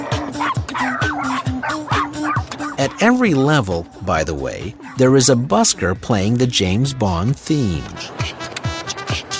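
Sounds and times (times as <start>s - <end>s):
dogs yelping: 0.0s - 3.0s, 4.7s - 5.1s, 8.0s - 9.3s
pack of at least ten dogs barking and yipping: 0.0s - 3.1s, 7.9s - 9.3s
speech: 2.8s - 8.4s.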